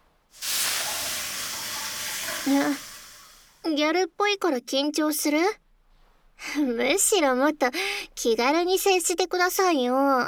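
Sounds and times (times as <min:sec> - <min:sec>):
sauna steam hissing from poured aroma water: 0:00.4 - 0:03.6
speech: 0:02.4 - 0:02.9, 0:03.6 - 0:05.6, 0:06.4 - 0:10.2.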